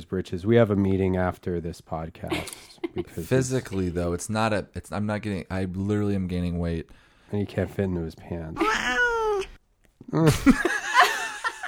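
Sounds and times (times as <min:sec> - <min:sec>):
speech: 0:00.0 - 0:09.0, 0:10.1 - 0:10.8
kittens fighting, yowling and meowing: 0:08.6 - 0:09.6.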